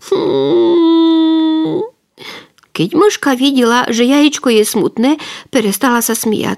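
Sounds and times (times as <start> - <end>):
voice imitating crying, performing the weeping of a painted Easter egg: 0.0 - 2.0
speech: 2.8 - 6.5.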